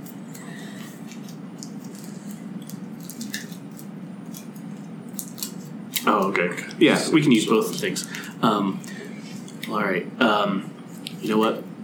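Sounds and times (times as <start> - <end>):
playing cards being shuffled: 0.8 - 6.3
speech: 6.0 - 8.9, 9.7 - 11.7.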